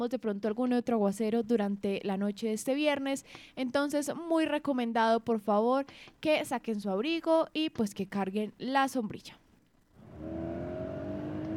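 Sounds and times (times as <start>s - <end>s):
speech: 0.0s - 9.4s
car engine revving: 10.0s - 11.5s.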